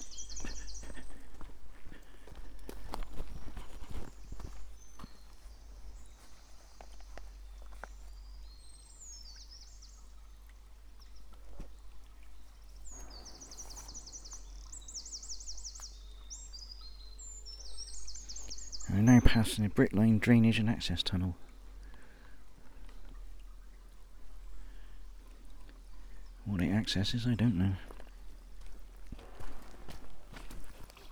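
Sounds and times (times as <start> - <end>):
footsteps crunching through woods: 0.0 - 8.2, 27.8 - 31.1
birds chirping in woods: 0.0 - 31.1
stream flowing in a sandstone gully in woods: 0.0 - 31.1
speech: 19.3 - 21.5, 26.9 - 27.9.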